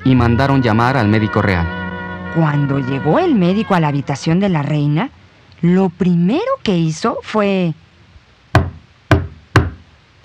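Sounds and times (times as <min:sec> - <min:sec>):
speech: 0:00.1 - 0:07.8
knocking on a wooden door: 0:08.6 - 0:09.8.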